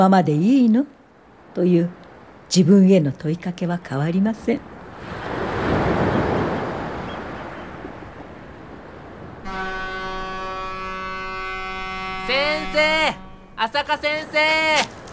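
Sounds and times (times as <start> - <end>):
speech: 0.0 - 1.0, 1.6 - 5.2, 13.6 - 15.0
ocean waves washing on the shore: 0.0 - 15.1
steady sustained tonal chord: 9.5 - 13.8.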